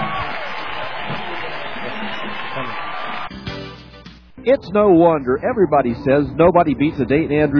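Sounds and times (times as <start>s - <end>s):
large crowd roaring and cheering: 0.0s - 4.1s
speech: 4.4s - 7.5s.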